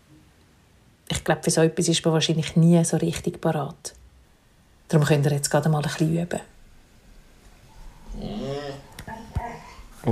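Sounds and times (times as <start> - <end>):
speech: 1.3 - 4.0, 4.9 - 6.5
dog whimpering and making warbling vocal noises: 8.0 - 9.0.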